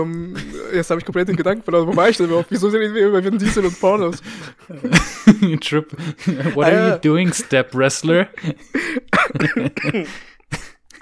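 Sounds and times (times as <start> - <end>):
speech: 0.0 - 10.3
laughter: 0.0 - 11.0
person coughing: 8.7 - 11.0.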